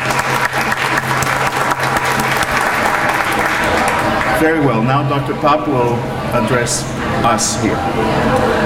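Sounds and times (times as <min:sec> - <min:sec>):
audience applause at a university event: 0:00.0 - 0:04.4
speech: 0:04.4 - 0:08.5.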